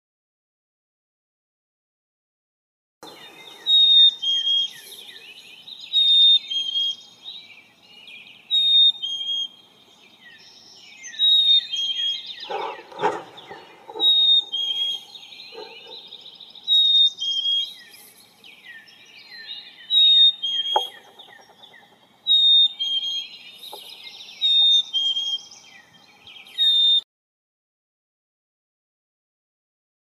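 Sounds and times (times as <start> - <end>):
Black-capped Chickadee Poecile atricapillus calling: 3.0 - 7.1, 11.1 - 18.1, 18.7 - 27.0.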